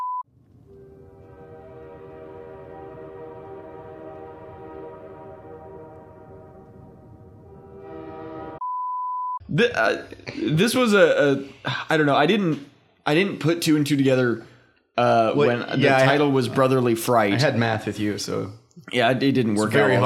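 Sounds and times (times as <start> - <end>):
train horn blaring: 0.7 - 8.6
speech: 9.5 - 20.0.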